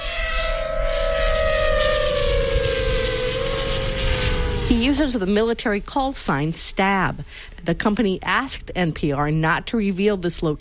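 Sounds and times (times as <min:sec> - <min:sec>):
rushing noise: 0:00.0 - 0:06.6
military drone propellers buzzing in flight: 0:00.0 - 0:06.7
speech: 0:04.7 - 0:10.5.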